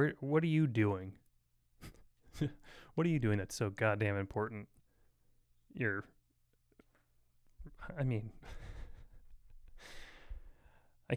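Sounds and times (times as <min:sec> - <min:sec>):
speech: 0:00.0 - 0:01.2, 0:01.8 - 0:04.8, 0:05.7 - 0:06.2, 0:07.6 - 0:08.7
loud airy wheezing breaths: 0:08.4 - 0:11.0
short voiced gasps or sighs: 0:09.8 - 0:11.0.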